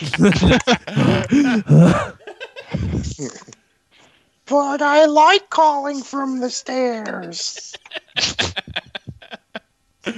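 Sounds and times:
speech: 0.0s - 2.1s, 4.5s - 8.8s
laughter: 0.0s - 3.3s, 7.0s - 10.1s
voice imitating heavy breathing on a Skype voicemail: 0.8s - 3.2s.

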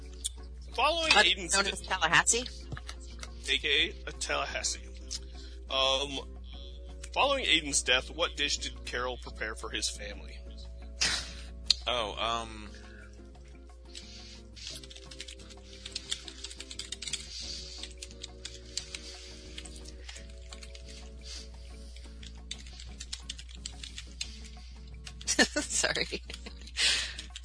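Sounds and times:
speech: 0.8s - 2.6s, 3.5s - 4.8s, 5.7s - 6.3s, 7.1s - 10.4s, 11.9s - 12.8s, 25.5s - 26.3s
typing on a computer keyboard: 14.8s - 20.8s, 22.2s - 24.3s.

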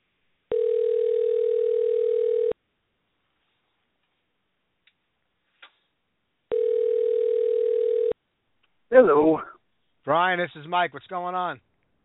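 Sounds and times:
telephone dial tone while placing a call: 0.5s - 2.6s, 6.5s - 8.2s
speech: 10.3s - 11.7s.

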